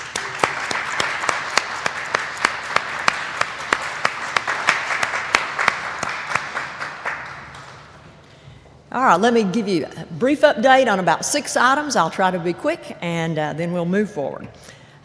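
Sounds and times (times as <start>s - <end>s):
audience applause from a room full of people: 0.0s - 7.9s
speech: 9.0s - 15.0s.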